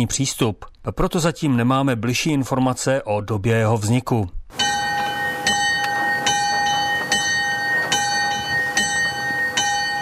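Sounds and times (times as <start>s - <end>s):
speech: 0.0s - 4.4s
small church death-knell bell with G3 main tone striking: 4.5s - 10.0s.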